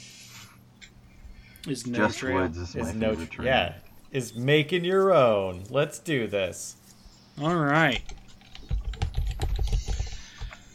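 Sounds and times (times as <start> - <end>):
speech: 1.6 - 6.8, 7.4 - 8.1
typing on a computer keyboard: 8.0 - 10.6.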